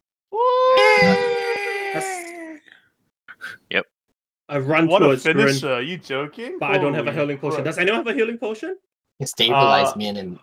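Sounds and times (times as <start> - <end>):
death shriek of a fetal eldritch god blowing up: 0.4 - 2.5
speech: 3.7 - 3.9, 4.5 - 10.4.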